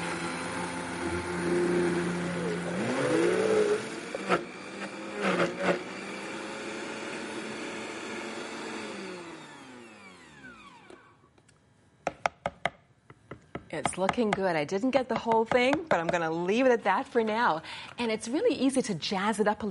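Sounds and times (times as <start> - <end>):
Vitamix blender motor roaring while blending frozen banana: 0.0 - 11.2
speech: 1.1 - 1.8, 13.8 - 19.6.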